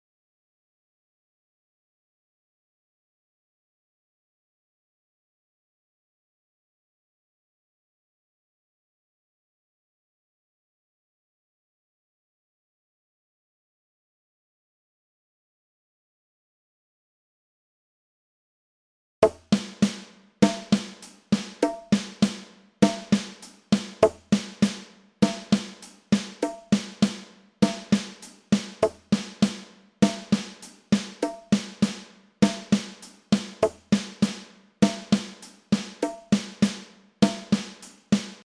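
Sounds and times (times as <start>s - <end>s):
music at 50 bpm: 19.2s - 38.4s.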